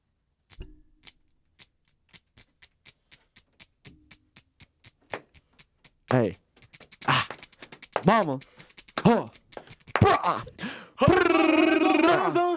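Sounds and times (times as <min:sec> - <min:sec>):
acrylic nails tapping in a steady rhythm: 0:01.6 - 0:10.4
speech: 0:08.1 - 0:09.4, 0:10.3 - 0:10.5, 0:11.4 - 0:12.5.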